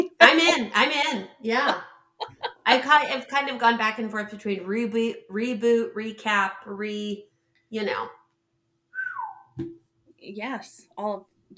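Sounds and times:
speech: 0.3s - 1.9s, 2.7s - 8.2s, 9.6s - 11.5s
laughter: 1.5s - 3.1s
person whistling a single note sliding downward: 8.9s - 9.6s.

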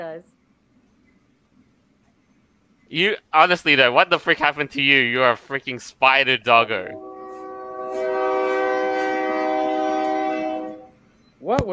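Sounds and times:
speech: 0.0s - 0.4s, 2.9s - 7.1s, 11.4s - 11.7s
train horn blaring: 6.3s - 11.1s.

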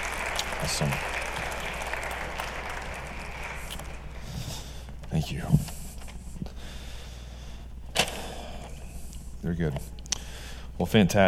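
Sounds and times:
room full of people applauding: 0.0s - 4.9s
speech: 0.6s - 1.1s, 5.2s - 5.7s, 9.4s - 10.0s, 10.8s - 11.2s.

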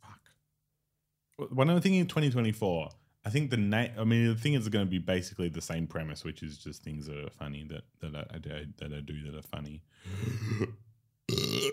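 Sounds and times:
speech: 1.4s - 10.9s
loud burps: 10.2s - 11.7s.

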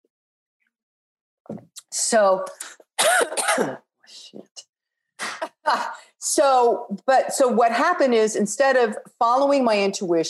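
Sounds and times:
speech: 1.5s - 4.7s, 5.6s - 10.2s
person clearing throat: 3.0s - 3.8s
person coughing: 3.0s - 3.8s.

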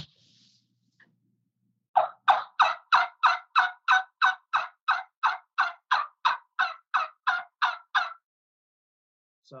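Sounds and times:
homemade Osage orange wood trumpet-style turkey call yelps: 2.0s - 8.2s.

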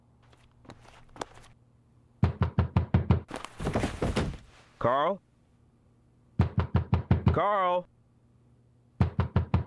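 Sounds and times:
fist pounding on the door of a house: 2.2s - 4.4s, 6.4s - 7.4s, 9.0s - 9.6s
man calling out for the door to be opened: 4.8s - 5.2s, 7.3s - 7.9s
speech: 4.8s - 5.3s, 7.4s - 7.9s.

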